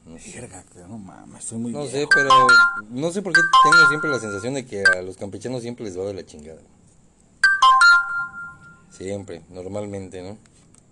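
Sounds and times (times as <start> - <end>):
speech: 0.2 - 6.8, 9.0 - 10.5
cell phone ringtone rising jingle: 2.1 - 5.0, 7.4 - 8.9.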